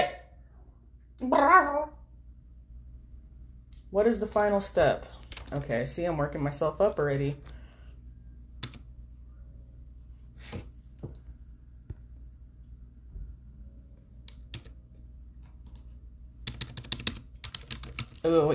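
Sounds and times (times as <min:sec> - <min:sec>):
low hum: 0:00.0 - 0:10.4, 0:11.2 - 0:16.5
speech: 0:03.9 - 0:07.6, 0:18.3 - 0:18.5
typing on a computer keyboard: 0:08.6 - 0:08.8, 0:14.3 - 0:14.8, 0:15.6 - 0:18.2.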